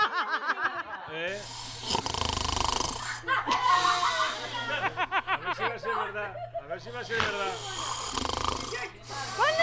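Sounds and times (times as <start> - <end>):
short bursts of laughter: 0.0 - 1.1, 3.0 - 6.8
speech: 1.1 - 2.0, 6.0 - 7.9
wheezy breath: 1.3 - 4.9, 7.4 - 9.6
loud rattling snore: 1.4 - 3.2, 7.3 - 9.6.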